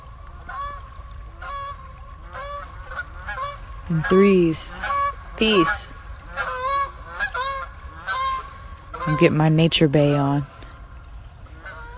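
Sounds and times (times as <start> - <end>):
geese honking overhead: 1.4 - 9.4, 11.6 - 11.9
speech: 3.9 - 6.0, 9.1 - 10.5.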